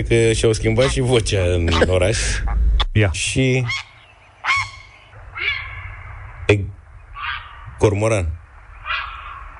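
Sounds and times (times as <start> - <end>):
speech: 0.0 - 3.9, 6.5 - 6.7, 7.8 - 8.4
steady low rumble of noise: 0.0 - 9.5
goose honking: 0.7 - 2.6, 3.6 - 5.9, 7.2 - 7.7.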